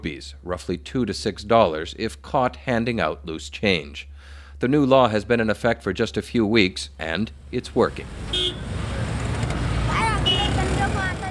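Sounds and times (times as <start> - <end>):
speech: 0.0 - 8.4
low rumble of engines idling at a busy road junction: 6.2 - 11.3.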